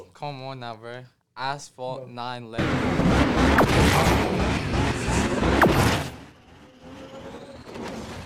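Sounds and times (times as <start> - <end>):
speech: 0.2 - 4.6
racing video game car crashing impacts: 2.6 - 7.0
faint rising whine: 2.6 - 8.2
quieter whooshing rumble: 2.6 - 8.2
roaring racing video game car engines: 2.6 - 8.2
sharp bangs: 2.6 - 8.2.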